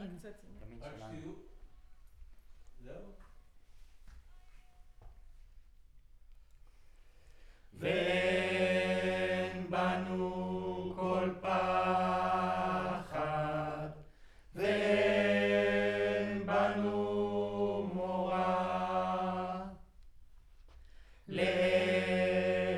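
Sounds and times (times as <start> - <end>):
choir singing into a U47 microphone: 7.8 - 20.0, 21.3 - 22.7.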